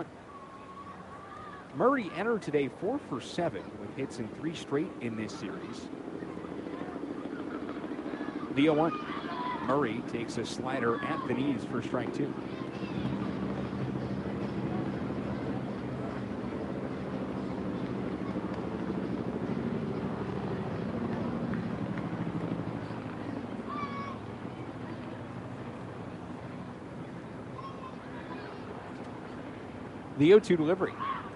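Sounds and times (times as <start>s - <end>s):
distant helicopter rotors droning: 0.0s - 31.3s
outdoor crowd ambience at a baseball game: 0.0s - 31.3s
speech: 1.8s - 6.1s, 8.6s - 12.6s, 30.2s - 31.0s.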